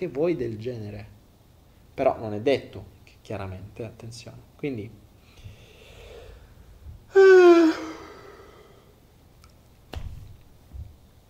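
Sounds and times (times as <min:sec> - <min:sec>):
speech: 0:00.0 - 0:01.2, 0:02.0 - 0:05.0
person yawning: 0:07.1 - 0:09.0.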